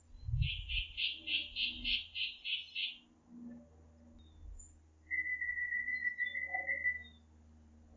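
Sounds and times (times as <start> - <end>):
small sparrow singing in a tall tree in Quito, Ecuador: 0.0 - 3.1, 4.2 - 7.3.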